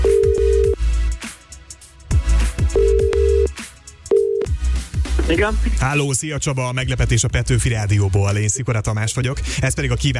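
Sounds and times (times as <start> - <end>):
ringback tone of an outgoing phone call: 0.0 - 0.8, 2.8 - 3.5, 4.1 - 4.5
music with low thumping beats: 0.0 - 6.0
speech: 5.3 - 10.1.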